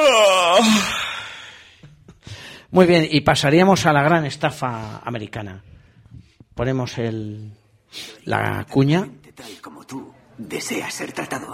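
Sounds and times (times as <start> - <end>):
person yawning: 0.0 - 1.8
speech: 2.7 - 5.8, 6.6 - 11.5.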